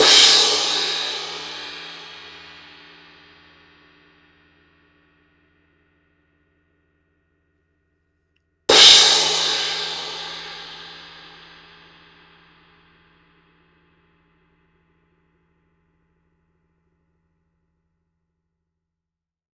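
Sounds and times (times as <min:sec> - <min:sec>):
X-Series crash cymbal: 0:00.0 - 0:03.1, 0:08.7 - 0:11.8.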